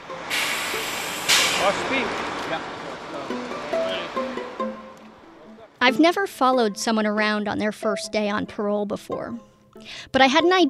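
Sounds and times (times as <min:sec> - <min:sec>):
bus engine drone and whine in a parking lot: 0:00.0 - 0:05.8
noise: 0:00.0 - 0:07.7
bus air brakes hissing and releasing in a parking lot: 0:00.1 - 0:02.8
speech: 0:01.6 - 0:03.7, 0:05.9 - 0:10.6.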